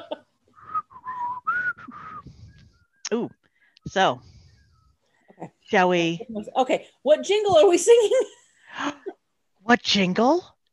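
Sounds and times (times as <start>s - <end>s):
person attempting to whistle with a breathy unsteady whistle: 0.5s - 5.3s
speech: 3.1s - 4.3s, 5.7s - 9.0s, 9.7s - 10.5s.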